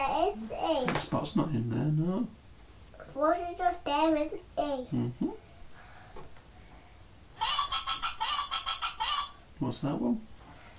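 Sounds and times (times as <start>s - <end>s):
speech: 0.0s - 2.4s, 3.1s - 5.4s, 9.6s - 10.3s
hen clucking played from a children's sound book button: 7.4s - 9.5s.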